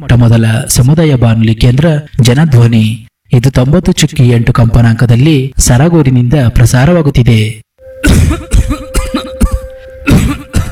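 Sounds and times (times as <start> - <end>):
speech: 0.0 - 8.6
man coughing deeply and chestily: 8.0 - 10.7.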